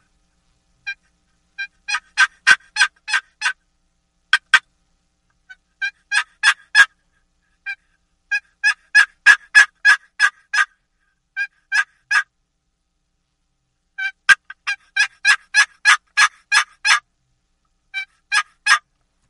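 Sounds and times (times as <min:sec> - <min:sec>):
wooden box call scraping turkey hen yelps: 0:00.8 - 0:03.6, 0:04.3 - 0:04.7, 0:05.4 - 0:12.3, 0:14.0 - 0:17.1, 0:17.9 - 0:18.9.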